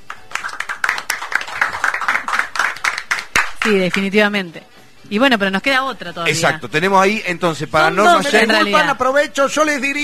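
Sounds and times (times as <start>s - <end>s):
applause from a small audience: 0.0s - 3.7s
speech: 3.6s - 10.0s.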